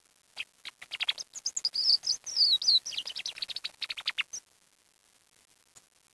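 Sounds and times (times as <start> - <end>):
bird giving a rapid stream of high chirps: 0.4 - 4.4.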